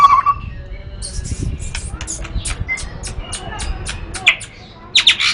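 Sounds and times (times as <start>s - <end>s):
white-rumped shama singing: 0.0s - 4.2s
sharp clicking ticks: 1.6s - 5.2s.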